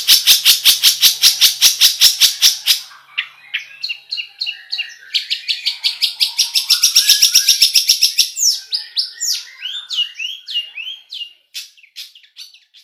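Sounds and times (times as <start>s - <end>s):
long-tailed shrike singing: 0.0s - 12.6s.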